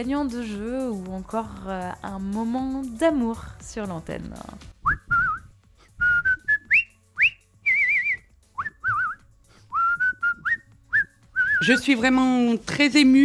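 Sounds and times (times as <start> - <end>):
speech: 0.0 - 5.0, 11.6 - 13.2
person whistling a lively warbling melody with trills: 4.8 - 11.8.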